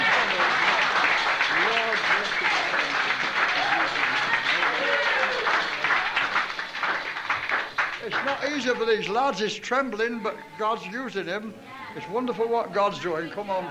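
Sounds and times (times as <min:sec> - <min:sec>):
audience applause: 0:00.0 - 0:09.2
speech: 0:08.9 - 0:13.6.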